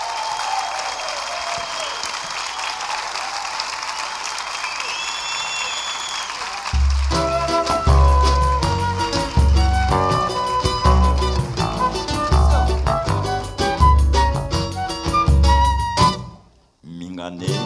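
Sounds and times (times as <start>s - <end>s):
large audience applause: 0.0s - 14.1s
loud music: 6.8s - 16.3s.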